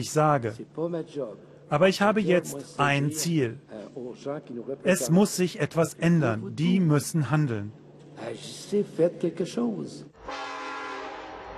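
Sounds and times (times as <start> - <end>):
speech: 0.0 - 10.5
freight train horn droning: 10.2 - 11.5.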